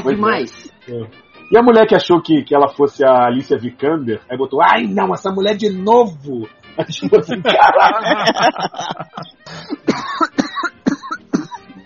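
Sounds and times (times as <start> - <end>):
speech: 0.0 - 10.4
laughter: 6.8 - 9.8
person coughing harshly: 9.2 - 11.8.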